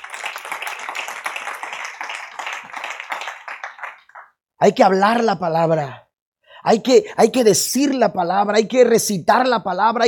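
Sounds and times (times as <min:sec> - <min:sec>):
audience applauding: 0:00.0 - 0:04.4
speech: 0:04.6 - 0:06.0, 0:06.6 - 0:10.0.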